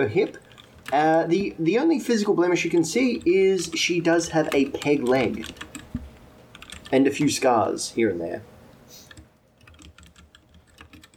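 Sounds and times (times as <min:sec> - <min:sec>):
speech: 0:00.0 - 0:05.7, 0:06.9 - 0:08.5
fierce rapid typing on a computer keyboard: 0:00.2 - 0:01.3, 0:02.6 - 0:07.0, 0:09.0 - 0:11.1.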